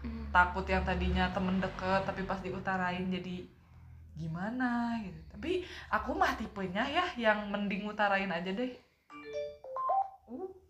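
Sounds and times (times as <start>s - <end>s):
speech: 0.4s - 3.6s, 4.2s - 8.8s
phone notification chime jingle: 9.1s - 10.3s.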